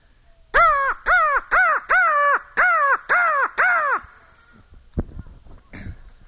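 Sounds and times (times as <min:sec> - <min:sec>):
person imitating crow caws: 0:00.6 - 0:04.3.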